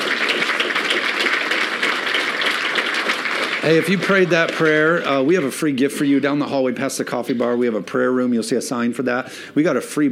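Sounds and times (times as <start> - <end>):
large crowd applauding loudly: 0.0 - 5.6
speech: 3.6 - 10.0.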